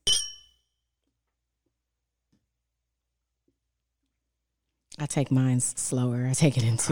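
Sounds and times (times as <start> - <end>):
shot glasses clinking in a toast: 0.0 - 0.5
speech: 5.0 - 6.9.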